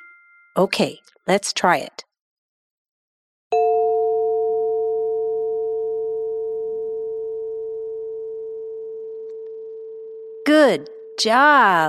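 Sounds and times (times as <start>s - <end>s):
chime ringing: 0.0s - 1.0s, 3.5s - 8.2s
speech: 0.6s - 2.1s, 10.5s - 11.8s.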